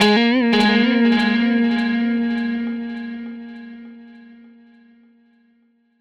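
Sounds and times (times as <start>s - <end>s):
electric guitar loop: 0.0s - 4.6s.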